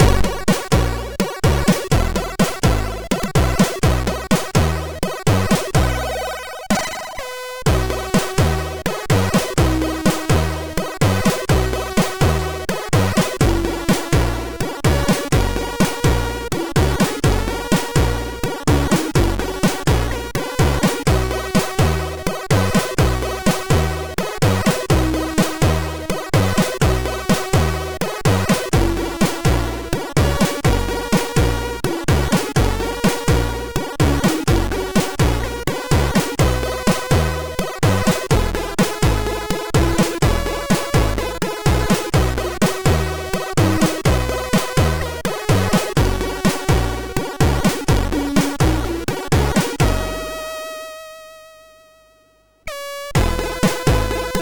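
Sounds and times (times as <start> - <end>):
tango music played on a MOS6581R4 SID chip: 0.0 - 50.9, 52.6 - 54.3.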